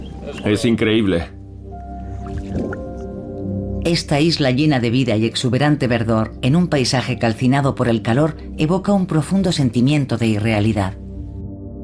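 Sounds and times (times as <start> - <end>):
speech: 0.2 - 1.4, 3.9 - 11.0
feet moving in the water of a desert oasis: 2.2 - 3.1.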